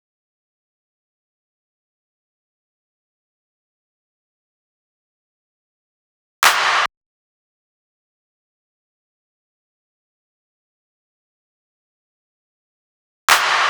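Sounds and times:
footwork drum loop with claps: 6.4s - 6.9s, 13.3s - 13.6s.

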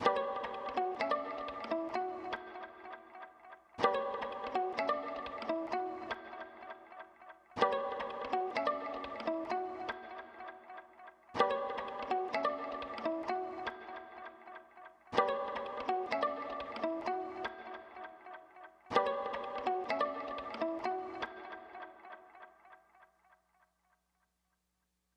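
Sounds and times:
pizzicato violin trap melody loop in B minor: 0.0s - 22.1s.

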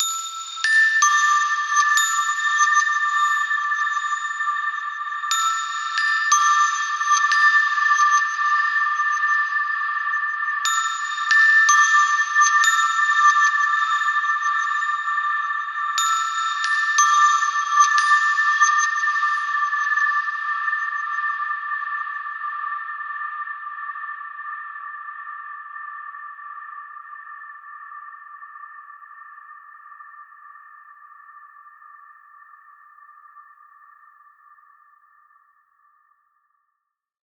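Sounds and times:
celesta playing in A: 0.0s - 23.0s.

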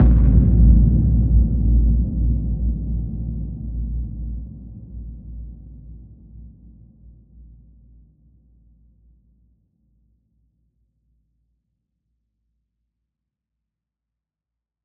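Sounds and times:
bass hit: 0.0s - 4.4s.

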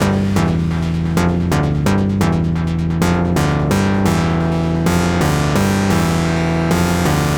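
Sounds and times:
techno synth loop in G: 0.0s - 7.3s.

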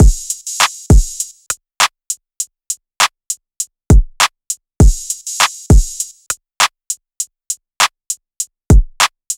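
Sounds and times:
West Coast drum loop: 0.0s - 1.5s, 3.9s - 6.3s.

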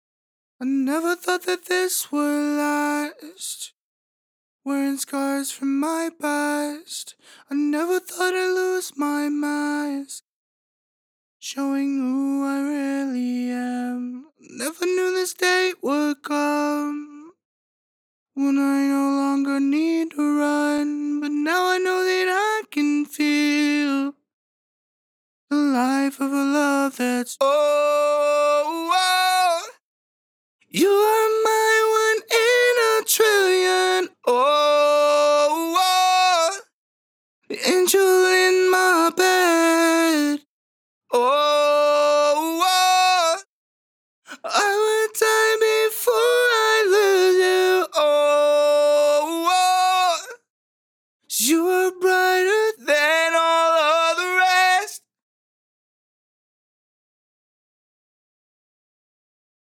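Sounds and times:
male a cappella harmony in B minor at 140 bpm: 0.6s - 3.7s, 4.7s - 10.2s, 11.4s - 17.3s, 18.4s - 24.2s, 25.5s - 29.8s, 30.7s - 36.7s, 37.5s - 40.5s, 41.1s - 43.5s, 44.3s - 50.4s, 51.3s - 55.0s.

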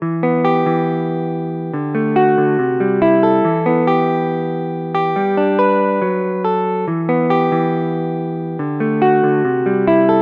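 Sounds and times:
nostalgic melody loop with E minor chords: 0.0s - 10.2s.

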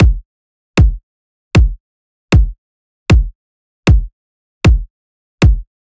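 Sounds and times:
EDM deathstep kick drum: 0.0s - 1.0s, 1.6s - 4.1s, 4.7s - 5.7s.

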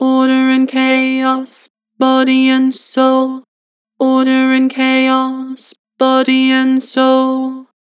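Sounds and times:
flat vocals: 0.0s - 7.9s.

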